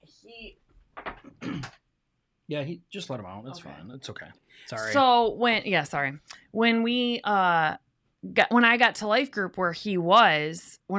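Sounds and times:
speech: 0.2s - 1.1s, 2.5s - 10.9s
door creaking open: 1.0s - 1.8s.

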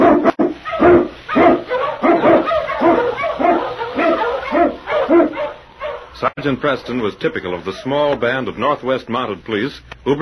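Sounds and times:
pack of husky sled dogs barking and yipping: 0.0s - 8.4s
husky sled dogs whining howls: 0.6s - 8.1s
speech: 6.4s - 10.2s.

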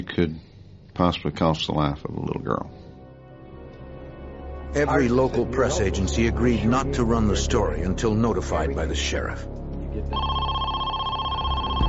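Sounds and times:
speech: 0.0s - 2.8s, 4.7s - 10.6s
telephone ringing with sustained electronic tone: 10.1s - 11.8s.

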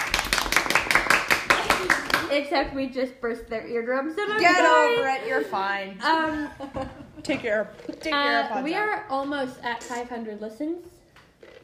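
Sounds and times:
small group of people clapping: 0.0s - 2.4s
speech: 2.3s - 10.9s.

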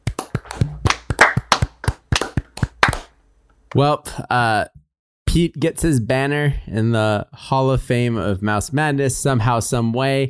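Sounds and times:
hosts clapping hands to celebrate a bracket winner: 0.0s - 3.1s
speech: 3.7s - 10.2s.

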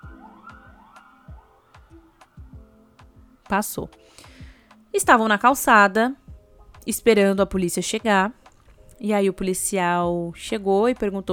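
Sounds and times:
ambulance siren wailing with rising sweeps: 0.0s - 2.6s
speech: 3.5s - 4.3s, 4.9s - 6.2s, 6.9s - 8.4s, 9.0s - 11.3s.

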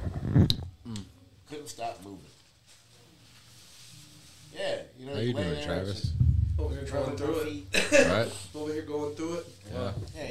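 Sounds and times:
speech: 0.4s - 0.6s, 1.6s - 2.4s, 4.6s - 10.2s
person coughing and clearing throat: 7.7s - 8.1s.

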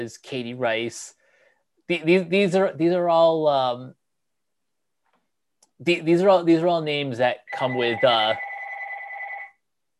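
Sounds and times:
speech: 0.0s - 1.2s, 1.9s - 4.0s, 5.8s - 8.5s
telephone ringing: 7.5s - 9.6s.

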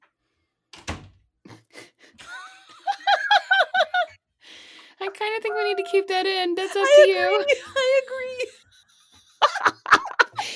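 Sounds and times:
door being shut: 0.8s - 1.2s
rhythmic snickering laughter: 1.5s - 4.1s, 8.5s - 10.5s
speech: 5.8s - 8.5s.

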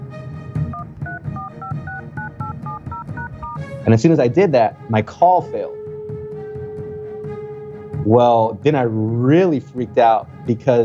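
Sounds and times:
touch-tone phone dialing beeps: 0.7s - 3.7s
speech: 3.8s - 5.8s, 8.0s - 10.8s.

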